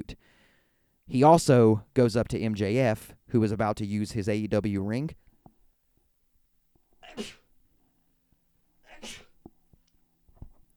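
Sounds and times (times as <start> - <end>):
speech: 1.1 - 5.2, 7.1 - 7.4
person sneezing: 7.0 - 7.5, 8.8 - 9.4.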